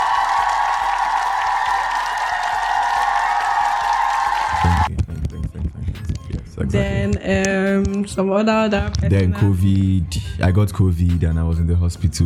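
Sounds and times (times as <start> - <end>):
crowd applauding and cheering: 0.0 - 4.9
speech: 6.7 - 12.2.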